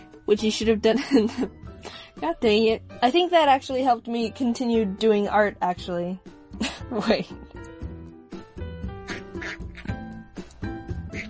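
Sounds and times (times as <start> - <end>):
speech: 0.3 - 7.4
duck quacking: 9.0 - 10.0.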